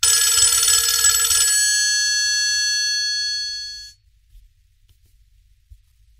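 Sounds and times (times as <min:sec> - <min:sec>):
Nokia phone alarm tone: 0:00.0 - 0:04.0.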